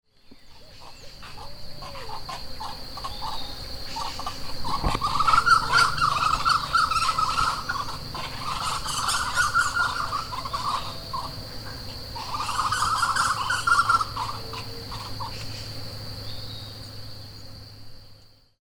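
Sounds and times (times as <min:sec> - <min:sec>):
Crotophaga major calling: 0:00.1 - 0:17.6.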